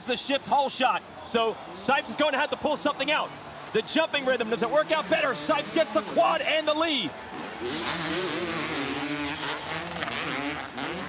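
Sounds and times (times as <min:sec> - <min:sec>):
speech: 0:00.0 - 0:08.4
two-stroke motocross bikes revving hard racing through whoops: 0:03.4 - 0:11.0.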